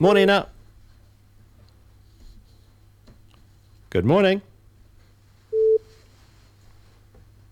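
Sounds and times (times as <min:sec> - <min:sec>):
speech: 0:00.0 - 0:00.6, 0:03.9 - 0:04.5
electronic telephone line beep: 0:05.6 - 0:05.9.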